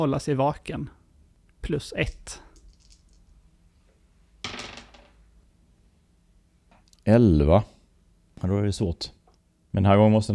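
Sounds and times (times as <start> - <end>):
speech: 0.0 - 1.0, 1.6 - 2.5, 7.1 - 7.7, 8.4 - 10.3
two dice tumbling across a tabletop: 2.1 - 3.3, 4.4 - 5.3.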